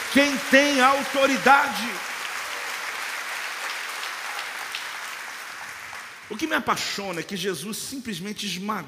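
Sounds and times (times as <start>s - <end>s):
applause from a sizable audience: 0.0s - 6.4s
speech: 0.1s - 2.1s, 6.3s - 8.8s.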